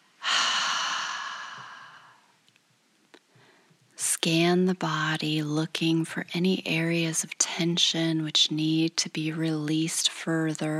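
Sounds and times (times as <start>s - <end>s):
long breathy exhale in a guided meditation breathing exercise: 0.2s - 2.3s
speech: 4.2s - 10.7s.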